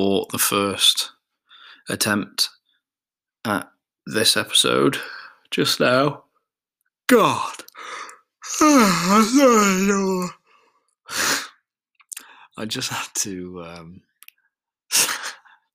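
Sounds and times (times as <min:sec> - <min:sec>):
speech: 0:00.0 - 0:01.2, 0:01.8 - 0:02.5, 0:03.4 - 0:06.2, 0:07.1 - 0:10.4, 0:11.1 - 0:11.3, 0:12.6 - 0:14.1
person yawning with a wavering voiced tone: 0:07.5 - 0:10.4
breathy exhales: 0:07.8 - 0:08.2.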